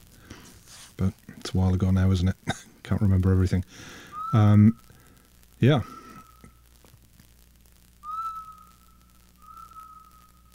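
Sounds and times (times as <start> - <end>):
low hum: 0.0 - 10.5
speech: 1.0 - 4.9, 5.6 - 6.0
person whistling a sustained steady tone: 4.1 - 4.6, 8.0 - 8.6.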